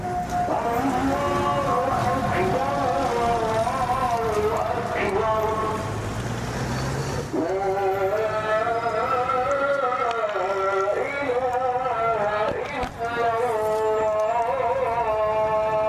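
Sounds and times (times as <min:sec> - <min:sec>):
muezzin's call to afternoon prayer over the Jemaa el-Fna square in Marrakesh: 0:00.0 - 0:06.1, 0:07.2 - 0:15.8
steady noise: 0:00.0 - 0:15.8.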